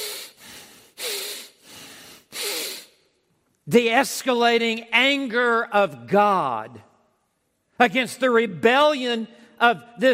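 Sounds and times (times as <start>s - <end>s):
loud heavy breathing through flared nostrils: 0.0s - 3.0s
speech: 3.7s - 6.9s, 7.8s - 10.1s.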